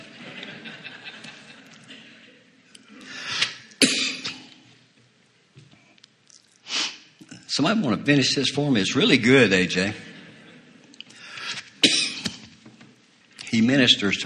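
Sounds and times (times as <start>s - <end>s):
laughter: 0.0s - 2.6s, 9.8s - 11.0s
harsh coughing fit: 2.9s - 4.6s, 11.4s - 12.5s
speech: 7.6s - 10.1s, 13.8s - 14.2s
ragged breathing: 11.1s - 11.8s.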